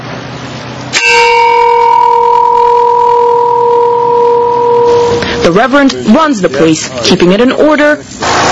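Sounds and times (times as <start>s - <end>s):
church bell strike at a homeless camp: 0.9s - 5.6s
speech: 5.5s - 8.3s.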